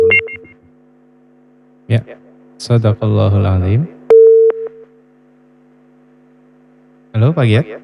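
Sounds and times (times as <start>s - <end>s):
telephone busy tone after a call is cut off: 0.0s - 0.5s, 4.1s - 4.8s
speech: 1.9s - 4.0s, 7.2s - 7.8s.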